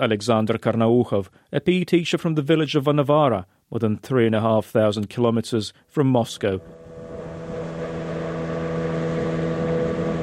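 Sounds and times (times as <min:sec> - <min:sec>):
speech: 0:00.0 - 0:06.8
boat motor droning on the Podkamennaya Tunguska River near Vanovara: 0:06.6 - 0:10.2.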